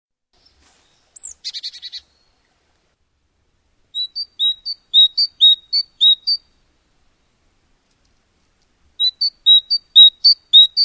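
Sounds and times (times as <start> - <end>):
high sweet bird chirps: 0.4 - 2.4, 3.9 - 6.5, 9.0 - 10.8.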